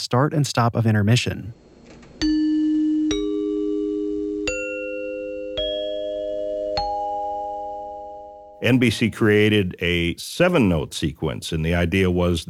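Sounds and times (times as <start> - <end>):
speech: 0.0 - 1.6, 8.6 - 12.4
dinner chimes struck: 2.2 - 8.9.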